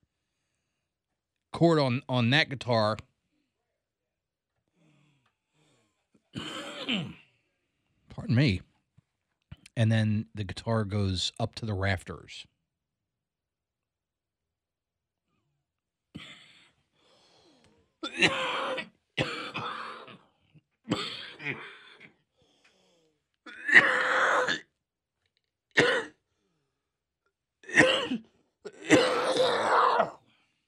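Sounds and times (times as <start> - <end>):
speech: 1.6 - 3.1, 6.3 - 7.2, 8.2 - 8.7, 9.8 - 12.5, 18.1 - 18.9, 20.9 - 21.6
person clearing throat: 6.3 - 7.3, 18.0 - 22.2, 23.4 - 24.7, 25.8 - 26.2, 27.6 - 30.2
person coughing: 6.3 - 7.3, 18.0 - 20.3, 20.9 - 22.1, 23.5 - 24.7, 25.8 - 26.2, 27.6 - 30.2.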